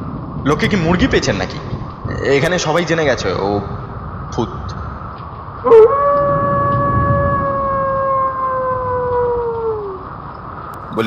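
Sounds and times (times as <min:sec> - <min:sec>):
constant noisy background: 0:00.0 - 0:11.0
speech: 0:00.4 - 0:04.8, 0:05.6 - 0:06.0
wolf howl sound effect: 0:05.6 - 0:10.3.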